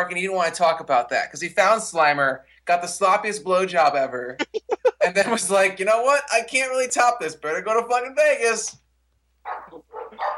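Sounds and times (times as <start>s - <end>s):
speech: 0.0s - 8.8s
pet dog barking: 9.4s - 10.3s.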